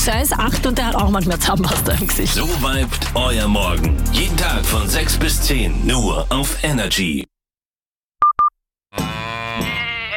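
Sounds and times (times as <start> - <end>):
speech: 0.0 - 7.3
electronic beeps: 1.9 - 2.9
sheep bleating: 9.0 - 10.1.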